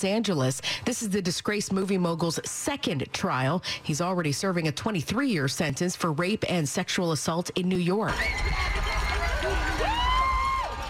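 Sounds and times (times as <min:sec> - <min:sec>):
speech: 0:00.0 - 0:09.9
outdoor crowd cheering at a marathon: 0:08.1 - 0:10.8.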